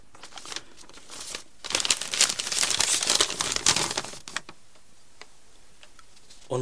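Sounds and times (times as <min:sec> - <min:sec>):
paper letter crinkling and rustling as it is unfolded: 0:00.0 - 0:04.6.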